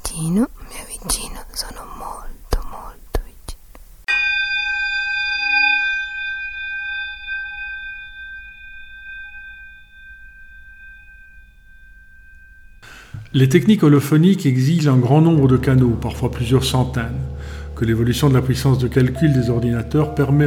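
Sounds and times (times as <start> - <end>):
speech: 0.2 - 1.9, 13.4 - 20.4
single bell strike in holophonic spatial recording: 4.1 - 13.8, 14.8 - 20.4.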